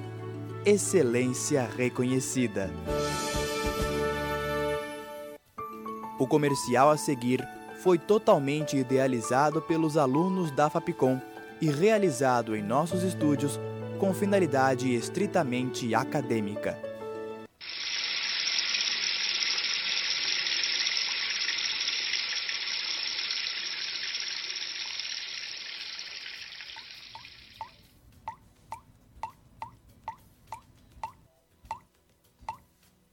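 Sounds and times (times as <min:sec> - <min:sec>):
speech: 0:00.7 - 0:03.8, 0:06.2 - 0:16.9
water running from a tap in a loud steady stream: 0:17.6 - 0:27.8
water drips plinking from a tap: 0:17.7 - 0:31.9.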